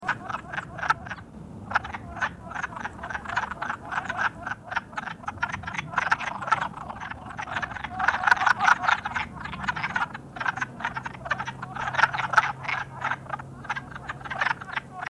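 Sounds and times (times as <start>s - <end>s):
wood frog: 0.0s - 15.0s.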